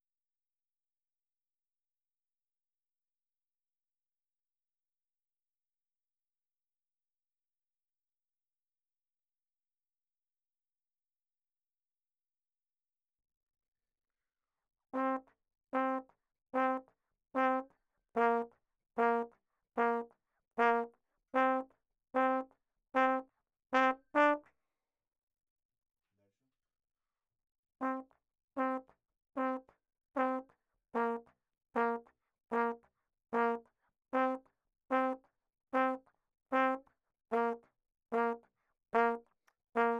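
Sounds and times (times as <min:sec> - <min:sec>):
ragtime trombone: 0:15.0 - 0:15.2, 0:15.8 - 0:16.0, 0:16.6 - 0:16.8, 0:17.4 - 0:23.2, 0:23.8 - 0:24.5, 0:27.8 - 0:31.2, 0:31.8 - 0:32.8, 0:33.4 - 0:33.6, 0:34.2 - 0:35.2, 0:35.8 - 0:38.4, 0:39.0 - 0:39.2, 0:39.8 - 0:39.9.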